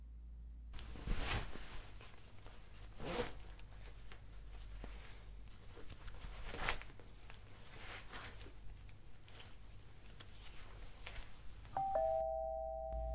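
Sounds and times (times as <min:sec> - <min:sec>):
soft rustling and shuffling: 0:00.7 - 0:11.8
electronic doorbell chime: 0:11.8 - 0:13.1.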